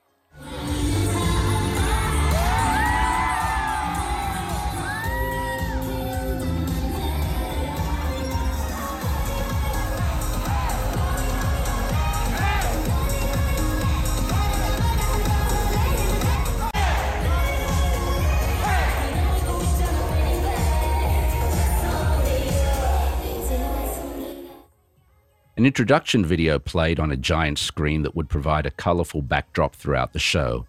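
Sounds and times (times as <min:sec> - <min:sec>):
steady booming rhythm: 0:00.7 - 0:23.2
large concert crowd roaring and cheering: 0:00.8 - 0:23.3
speech: 0:25.6 - 0:30.6.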